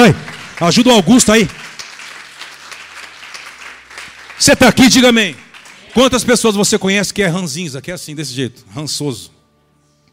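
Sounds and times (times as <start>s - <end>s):
speech: 0.0s - 1.6s, 4.4s - 5.4s, 6.0s - 9.4s
congregation applauding loudly: 0.0s - 6.7s.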